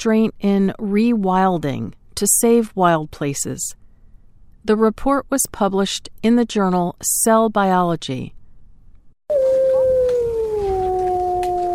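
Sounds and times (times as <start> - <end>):
speech: 0.0 - 3.8, 4.6 - 8.4
wolf howling: 9.3 - 11.7.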